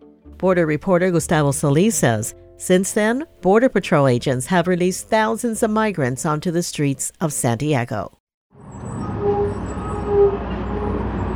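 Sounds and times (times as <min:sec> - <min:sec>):
speech: 0:00.4 - 0:08.2
bus engine rumbling: 0:08.6 - 0:11.3.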